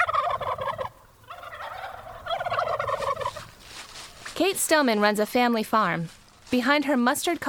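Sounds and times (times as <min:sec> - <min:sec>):
heritage turkeys gobbling on a family farm: 0:00.0 - 0:03.7
speech: 0:04.4 - 0:07.4.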